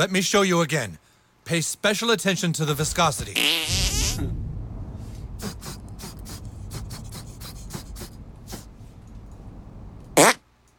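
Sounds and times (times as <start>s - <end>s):
speech: 0.0s - 4.3s
low rumble: 2.6s - 10.2s
sputtering fart bursts: 10.2s - 10.4s.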